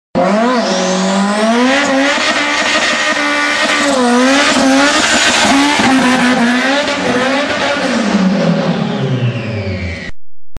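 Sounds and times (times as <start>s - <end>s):
Honda Civic car engine: 0.2s - 10.2s.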